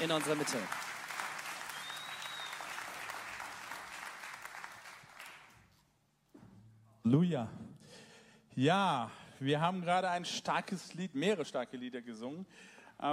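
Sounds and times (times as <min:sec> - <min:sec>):
speech: 0:00.0 - 0:00.9, 0:07.0 - 0:07.7, 0:08.6 - 0:13.1
warm audience applause: 0:00.0 - 0:05.6.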